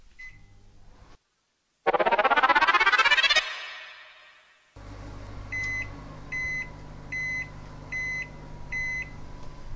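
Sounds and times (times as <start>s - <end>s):
microwave oven at 600 watts heating pasta: 0.0s - 1.1s, 4.8s - 9.7s
microwave oven electronic beeps: 1.9s - 4.4s
loud whirring surge of a microwave oven: 1.9s - 4.7s.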